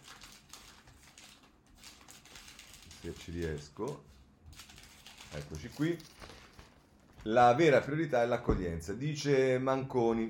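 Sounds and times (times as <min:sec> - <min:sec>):
pages of an Italian newspaper being turned: 0:00.0 - 0:07.6
speech: 0:03.0 - 0:04.2, 0:05.3 - 0:06.2, 0:07.2 - 0:10.2.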